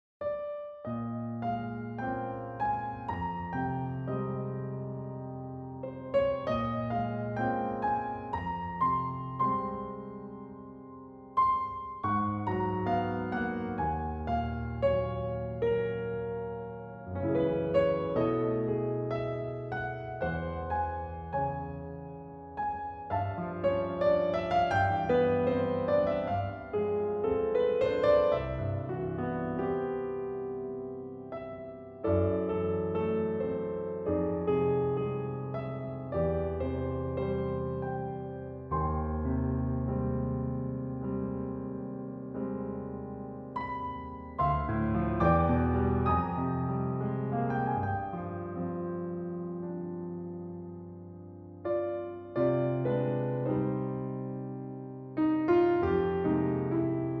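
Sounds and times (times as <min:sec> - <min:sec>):
Steinway D-274 concert grand piano: 0:00.2 - 0:57.1.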